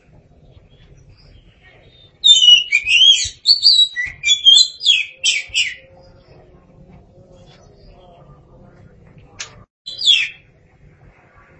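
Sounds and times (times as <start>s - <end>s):
faint background sounds: 0.0s - 11.5s
Oriental magpie-robin singing whistled and buzzy notes: 0.5s - 6.5s, 9.9s - 10.4s.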